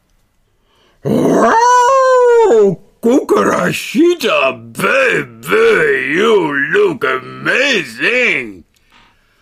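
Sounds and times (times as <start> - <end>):
wolf growling and howling: 1.0 - 2.9
speech: 2.7 - 8.6.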